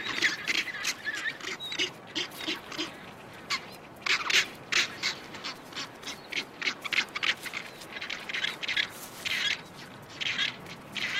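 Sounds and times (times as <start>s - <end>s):
rockhopper penguin parents and chicks calling in the Falklands: 0.0s - 11.1s.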